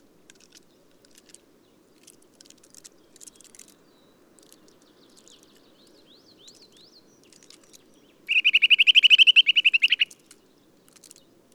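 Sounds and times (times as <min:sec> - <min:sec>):
Eurasian nuthatch Sitta europaea trilling: 0:08.3 - 0:10.2.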